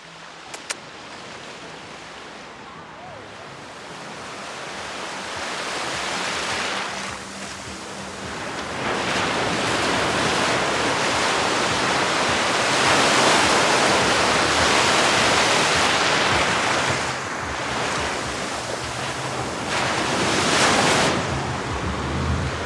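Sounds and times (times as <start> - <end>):
ocean waves crashing at a beach in Tulum around a person's ankles: 0.0 - 22.6.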